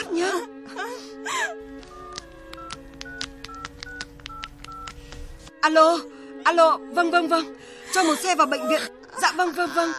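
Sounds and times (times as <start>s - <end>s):
telephone keypad beeps dialing a number for an emergency call: 2.0s - 5.0s
speech: 5.6s - 9.9s.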